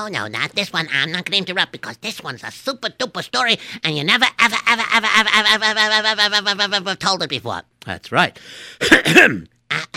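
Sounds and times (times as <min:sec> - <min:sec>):
speech: 0:00.0 - 0:09.9
person clearing throat: 0:08.8 - 0:09.9.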